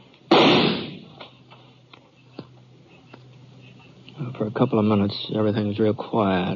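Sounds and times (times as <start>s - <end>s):
gunshot echoing in a canyon: 0.3s - 1.2s
speech: 4.3s - 6.5s.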